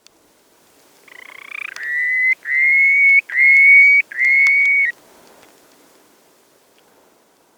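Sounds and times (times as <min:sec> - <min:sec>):
purple sandpiper singing: 0:01.1 - 0:04.9.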